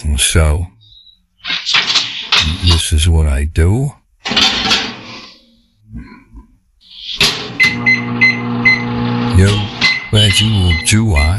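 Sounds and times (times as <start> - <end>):
speech: 0.0 - 0.8, 2.4 - 4.8, 9.4 - 11.3
microwave electronic beeps: 6.8 - 11.3
microwave oven humming while heating a drink: 7.2 - 11.3.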